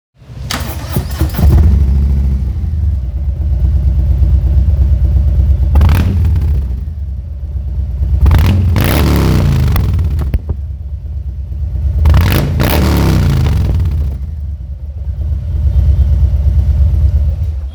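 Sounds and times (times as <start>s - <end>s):
Fatboy 107 motorcycle engine with Vance Hines exhaust: 0.2s - 17.7s.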